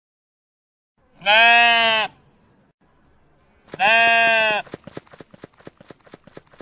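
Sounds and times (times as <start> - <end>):
sheep bleating: 1.2 - 2.2, 3.7 - 4.7
hooves clattering: 3.7 - 6.6.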